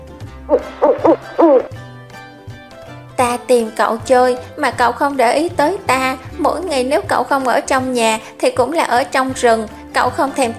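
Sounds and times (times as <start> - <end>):
large bird making a plaintive cooing gurgling call: 0.5 - 1.7
speech: 0.5 - 1.8, 3.5 - 10.5.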